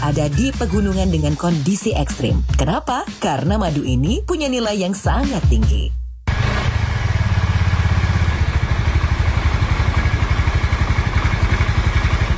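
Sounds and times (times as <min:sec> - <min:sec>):
speech: 0:00.1 - 0:06.0
motor scooter engine running: 0:06.3 - 0:12.3.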